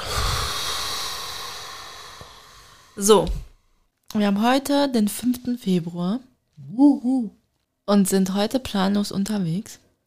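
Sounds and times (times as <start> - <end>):
deep exhale of breath: 0.0 - 3.6
speech: 3.0 - 3.4, 4.1 - 9.8.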